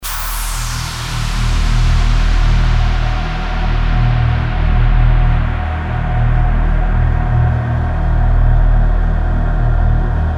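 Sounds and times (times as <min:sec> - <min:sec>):
doom drone: 0:00.0 - 0:10.2.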